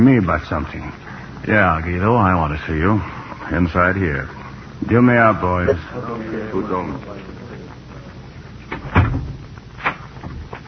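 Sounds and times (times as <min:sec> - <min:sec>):
speech: 0:00.0 - 0:07.4
door shutting with a solid thud: 0:08.7 - 0:10.6.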